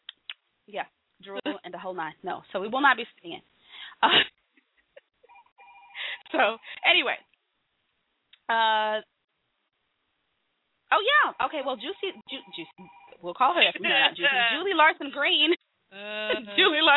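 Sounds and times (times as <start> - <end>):
speech: 0.7 - 4.3, 6.3 - 7.3, 8.5 - 9.1, 10.9 - 16.9
telephone ringing with a buzzy electronic tone: 5.3 - 6.7, 11.6 - 14.7
people talking over a narrow phone-like line: 11.0 - 14.7.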